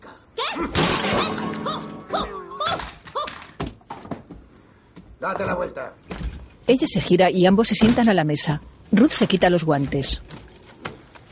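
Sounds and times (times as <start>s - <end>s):
guitar smashed against a wooden beam: 0.8s - 2.2s
speech: 5.2s - 10.4s.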